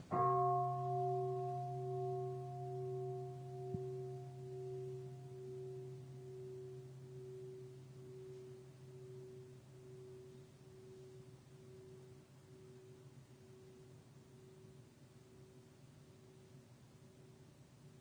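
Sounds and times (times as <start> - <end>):
large temple bell struck and ringing: 0.1 - 11.9.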